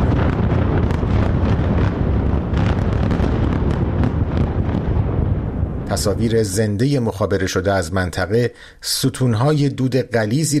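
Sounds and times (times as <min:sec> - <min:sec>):
heavy wind buffeting the microphone: 0:00.0 - 0:06.8
successive explosions from airstrikes on a city: 0:00.0 - 0:07.4
speech: 0:05.9 - 0:10.5.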